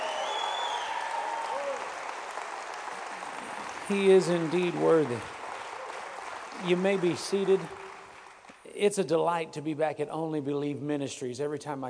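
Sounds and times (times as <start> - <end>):
faint whoops: 0.0 - 2.0
crowd applauding: 0.0 - 8.7
speech: 3.9 - 5.4, 6.6 - 7.8, 8.8 - 11.8.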